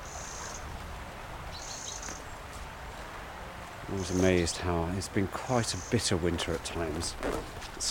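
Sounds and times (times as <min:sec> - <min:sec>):
wren harsh alarm call among ivy-covered willows in winter: 0:00.0 - 0:00.7, 0:01.5 - 0:02.5, 0:03.9 - 0:04.7, 0:05.6 - 0:06.2
steady rushing outdoor noise: 0:00.0 - 0:07.8
speech: 0:03.9 - 0:07.8.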